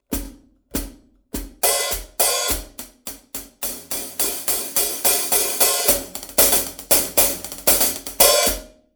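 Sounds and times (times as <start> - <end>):
Sabian cymbal: 1.6 - 8.7
medium 14-inch Sabian hi-hat: 1.6 - 8.7.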